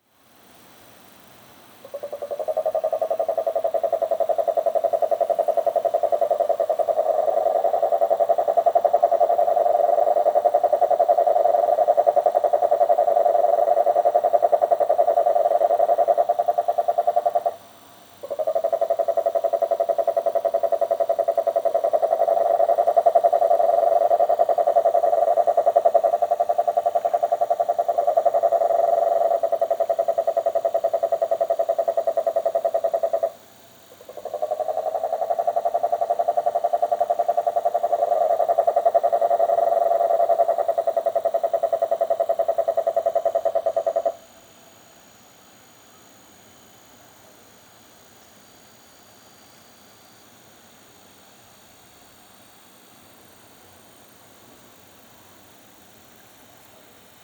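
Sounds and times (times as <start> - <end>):
marine toad Rhinella marina calling: 1.8 - 17.6, 18.2 - 44.3.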